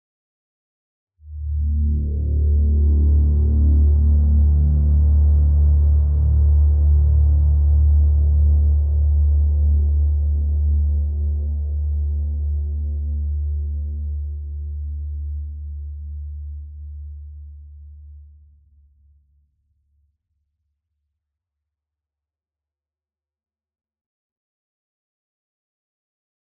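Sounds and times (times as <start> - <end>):
Juno6 synthesizer low chord in D: 1.3 - 17.7.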